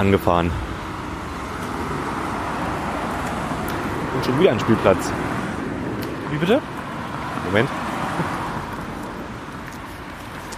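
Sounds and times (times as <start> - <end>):
speech: 0.0 - 0.7, 4.2 - 5.2, 6.3 - 6.7, 7.4 - 8.4
cars arriving from the ferry rolling past: 0.0 - 10.5.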